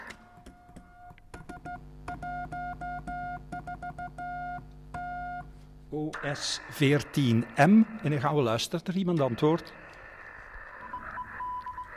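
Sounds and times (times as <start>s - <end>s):
Morse code tone from an amateur radio operator sending a CQ call: 0.6s - 5.5s, 10.8s - 11.9s
speech: 5.9s - 9.8s.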